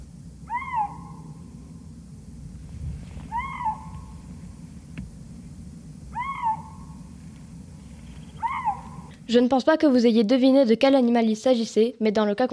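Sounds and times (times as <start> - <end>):
low rumbling background: 0.0 - 10.0
Eurasian lynx mating-season moaning cries: 0.4 - 1.4, 3.2 - 4.3, 6.1 - 7.2, 8.2 - 9.2
speech: 9.3 - 12.5.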